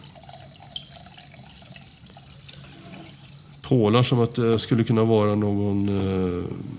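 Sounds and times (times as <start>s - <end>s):
drink pouring from a freshly opened bottle into a glass: 0.0s - 3.7s
speech: 3.7s - 6.7s.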